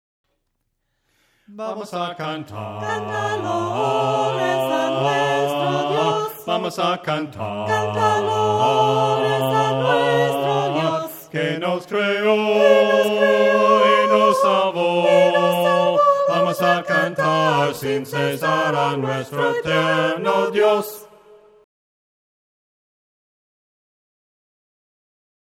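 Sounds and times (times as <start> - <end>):
voices singing hymns a cappella: 1.5 - 21.6.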